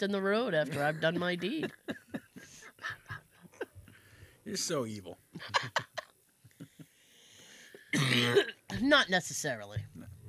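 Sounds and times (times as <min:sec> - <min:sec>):
speech: 0:00.0 - 0:02.0, 0:04.5 - 0:05.9, 0:07.9 - 0:10.1
faint hiss: 0:00.0 - 0:10.2
laughter: 0:00.7 - 0:03.8, 0:05.4 - 0:07.0
person coughing: 0:07.9 - 0:08.6.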